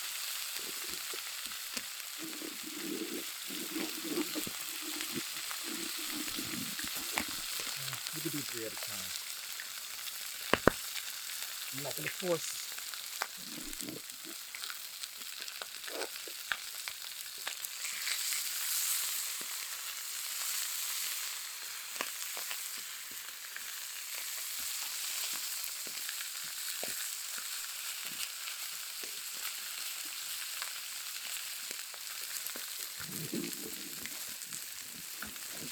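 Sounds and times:
skin searing in brown butter in a pan: 0.0 - 35.7
speech: 8.6 - 9.2, 11.8 - 12.6, 13.5 - 14.4.

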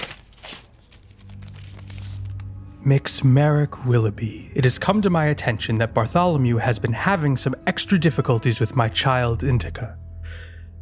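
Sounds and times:
paper crinkling and tearing as a wax-sealed envelope is opened: 0.0 - 2.4
speech: 2.8 - 10.0.

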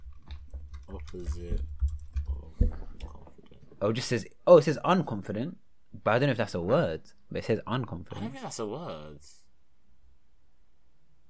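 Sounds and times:
typing on a computer keyboard: 0.2 - 2.4
speech: 0.9 - 1.8, 3.8 - 9.4.

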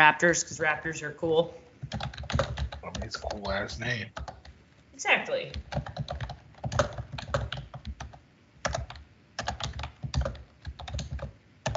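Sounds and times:
speech: 0.0 - 4.4, 5.0 - 6.2
rapid typing on a computer keyboard: 1.8 - 3.6, 4.2 - 4.6, 5.5 - 11.7.

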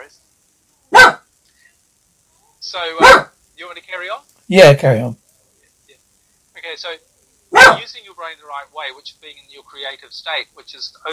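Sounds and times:
dog barking: 0.9 - 1.3, 3.0 - 3.4, 7.5 - 7.9
speech: 2.6 - 5.2, 6.6 - 11.1.

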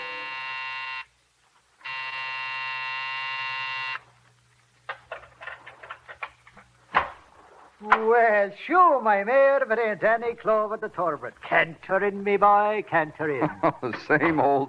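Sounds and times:
office building electric night buzzer growling: 0.0 - 1.1, 1.8 - 4.0
scattered clicks and clunks: 4.8 - 7.2
speech: 7.8 - 14.6
laughter: 13.2 - 14.6.

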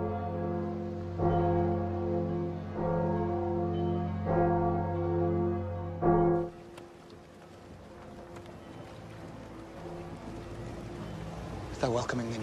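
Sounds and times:
church bells tolling: 0.0 - 6.6
speech: 11.8 - 12.4.

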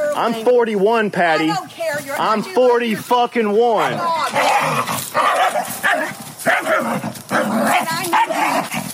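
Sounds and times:
speech: 0.2 - 5.0
dog barking and yipping: 5.2 - 8.7.

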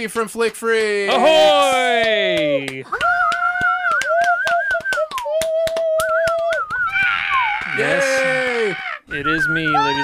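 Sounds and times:
speech: 0.0 - 3.3, 7.8 - 10.0
sharp irregular hand claps: 0.4 - 1.0, 1.8 - 7.9
wavering whoops or whistles of cheering: 3.6 - 7.6, 9.1 - 10.0.

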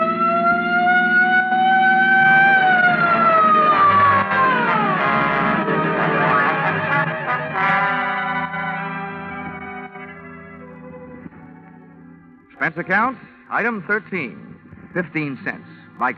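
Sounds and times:
police patrol car siren wailing: 0.0 - 12.1
low vehicle rumble: 0.0 - 13.0
speech: 12.8 - 16.1.

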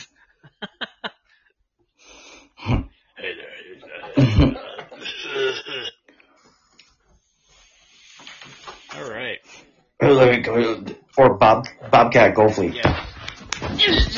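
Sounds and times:
laughter: 0.0 - 1.4, 3.2 - 5.9, 13.6 - 14.1
person clearing throat with raspy hacks: 2.6 - 6.0
speech: 10.1 - 13.0.

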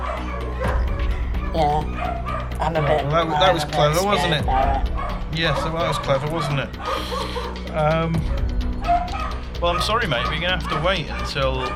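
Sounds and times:
dogs barking in a kennel: 0.0 - 11.7
speech: 2.0 - 8.4, 9.6 - 11.7.

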